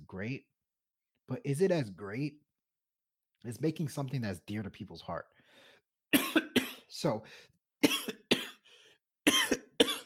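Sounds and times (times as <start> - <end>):
speech: 0.1 - 0.5, 1.3 - 2.4, 3.4 - 5.4, 7.0 - 8.2
person coughing harshly: 6.1 - 6.9, 7.8 - 8.6, 9.2 - 10.0.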